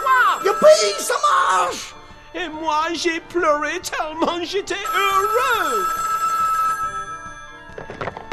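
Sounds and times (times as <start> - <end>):
telephone bell ringing: 0.0 - 1.9, 4.8 - 7.8
speech: 0.6 - 6.2.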